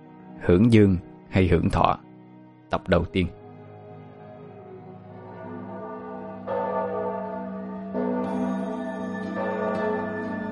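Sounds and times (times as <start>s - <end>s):
speech: 0.4s - 2.0s, 2.7s - 3.4s
Buddhist temple bell ringing in loud metallic strikes: 5.0s - 10.5s.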